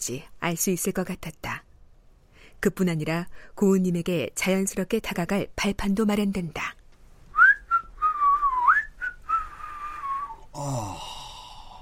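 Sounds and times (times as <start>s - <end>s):
speech: 0.0s - 1.6s, 2.6s - 6.8s, 10.6s - 11.1s
person whistling a short wavering tune: 7.4s - 10.4s
soft breathy sigh: 9.4s - 11.8s.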